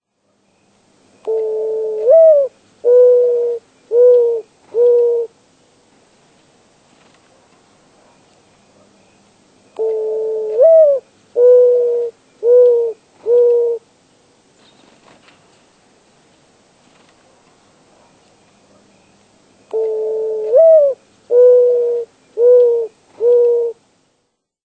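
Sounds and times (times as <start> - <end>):
mourning dove giving soft hooting coo: 1.3 - 5.3, 9.8 - 13.8, 19.7 - 23.8.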